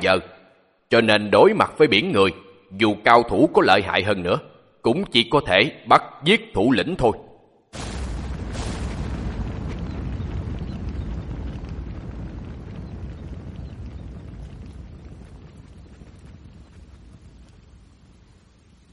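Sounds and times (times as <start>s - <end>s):
speech: 0.0s - 7.9s
thunder cracking: 7.8s - 18.8s
heavy rain: 7.8s - 18.9s.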